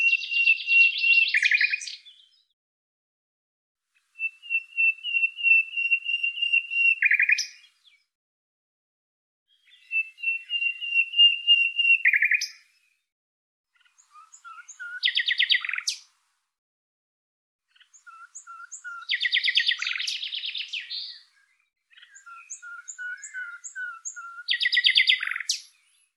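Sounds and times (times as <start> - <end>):
bird singing chattering trills and short whistled notes: 0.0 - 2.5, 4.2 - 8.1, 9.5 - 12.8, 13.8 - 16.1, 17.7 - 26.1.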